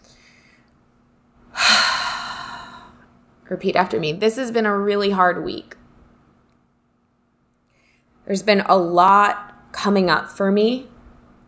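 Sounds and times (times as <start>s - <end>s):
deep breath during a guided tapping exercise: 1.6s - 3.1s
speech: 3.5s - 5.8s, 8.3s - 10.9s.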